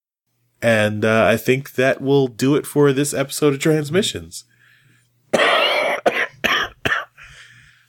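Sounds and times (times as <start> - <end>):
speech: 0.6 - 4.5
harsh rasping coughing fit: 5.3 - 7.2.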